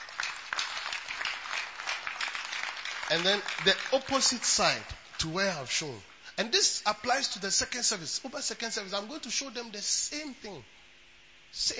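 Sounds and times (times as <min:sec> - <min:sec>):
crowd applauding in a large room: 0:00.0 - 0:06.0
speech: 0:03.1 - 0:10.8, 0:11.5 - 0:11.7.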